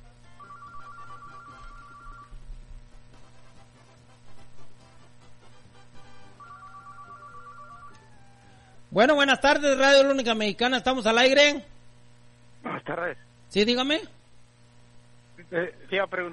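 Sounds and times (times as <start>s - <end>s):
low steady hum: 0.0s - 16.3s
telephone ringing with an incoming call on a radio call-in line: 0.3s - 2.3s, 6.4s - 8.8s
speech: 9.0s - 11.7s, 12.9s - 14.2s, 15.5s - 16.3s.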